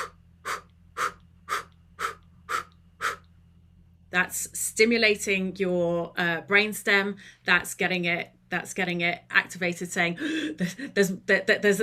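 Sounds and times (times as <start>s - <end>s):
forceful breaths blown out from the diaphragm during a breathing exercise: 0.0s - 3.3s
faint low hum: 0.0s - 11.8s
speech: 4.1s - 11.8s.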